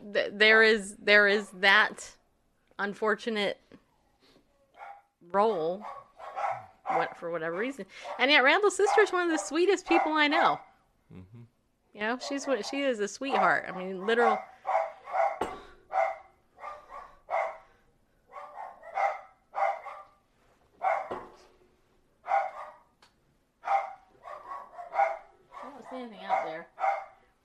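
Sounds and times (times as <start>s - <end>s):
speech: 0.1s - 2.2s, 2.8s - 3.7s, 5.3s - 6.0s, 6.9s - 14.8s
two dogs barking at home: 4.8s - 5.1s, 5.8s - 10.7s, 12.2s - 17.7s, 18.3s - 20.2s, 20.8s - 21.4s, 22.2s - 22.9s, 23.6s - 27.2s.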